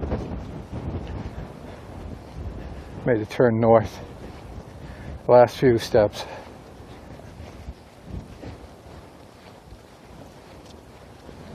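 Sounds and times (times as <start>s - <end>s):
light wind outdoors on a sunny afternoon walk: 0.0s - 11.5s
speech: 3.1s - 4.1s, 5.3s - 6.4s.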